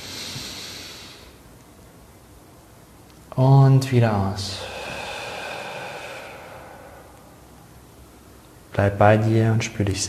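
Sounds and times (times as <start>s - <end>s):
long deep breath drawn in through the nose: 0.0s - 1.4s, 4.6s - 7.7s
speech: 3.4s - 4.7s, 8.8s - 10.0s.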